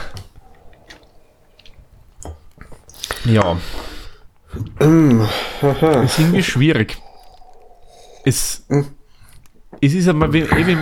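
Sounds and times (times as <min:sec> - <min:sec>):
person sipping Märzen beer: 0:00.0 - 0:05.3, 0:06.8 - 0:09.6
speech: 0:03.2 - 0:03.8, 0:04.8 - 0:07.0, 0:08.2 - 0:09.0, 0:09.8 - 0:10.8.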